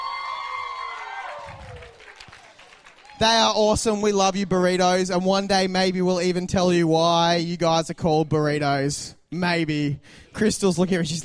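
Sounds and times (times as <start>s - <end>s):
whoops: 0.0s - 3.2s
audience cheering and applauding: 0.0s - 3.8s
speech: 3.2s - 11.2s.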